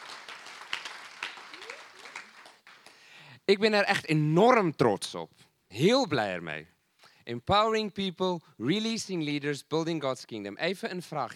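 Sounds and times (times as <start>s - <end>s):
audience applauding: 0.0s - 3.1s
speech: 3.5s - 11.3s.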